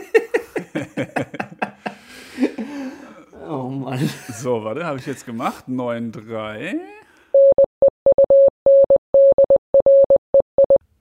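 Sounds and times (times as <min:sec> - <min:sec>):
laughter: 0:00.0 - 0:03.0
speech: 0:04.0 - 0:07.0
Morse code beeps generated on a website: 0:07.4 - 0:10.8.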